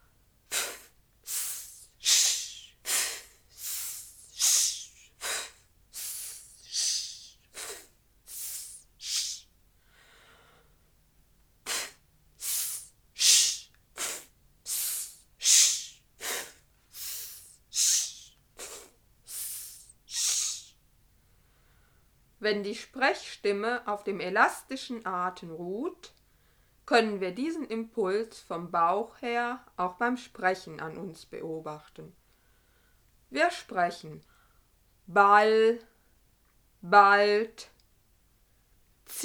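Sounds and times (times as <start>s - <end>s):
automatic inhalation: 0.5s - 10.7s, 11.6s - 20.8s
short sharp hissing breaths pushed out: 0.5s - 10.8s, 11.6s - 20.8s
speech: 22.4s - 26.1s, 26.9s - 32.2s, 33.3s - 34.3s, 35.1s - 35.9s, 36.8s - 37.7s.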